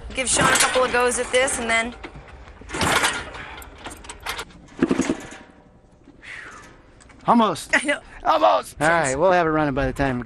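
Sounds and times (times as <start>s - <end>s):
speech: 0.2s - 2.1s, 7.2s - 10.2s
high-compression motorcycle being kick-started with kickstarter clanking: 0.2s - 5.7s.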